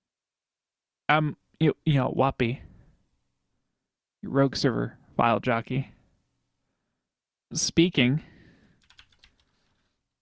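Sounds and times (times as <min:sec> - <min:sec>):
speech: 0:01.1 - 0:02.7, 0:04.2 - 0:05.9, 0:07.5 - 0:08.3
typing on a computer keyboard: 0:08.7 - 0:09.8.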